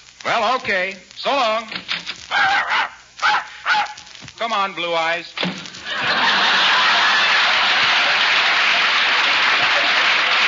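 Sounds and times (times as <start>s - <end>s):
speech: 0.2s - 2.6s, 4.4s - 6.2s
dog barking: 2.3s - 4.0s
laughter: 5.8s - 10.4s.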